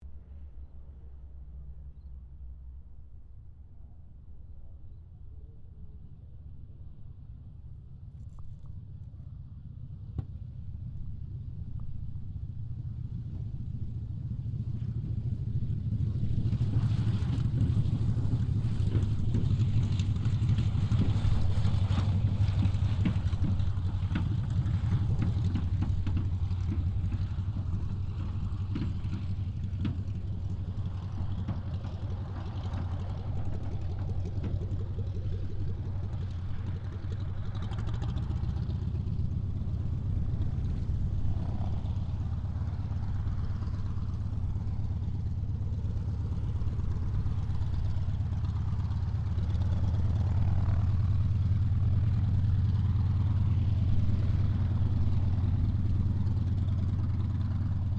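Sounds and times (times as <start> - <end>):
CAC CA-16 Wirraway aircraft landing: 0.0 - 57.9.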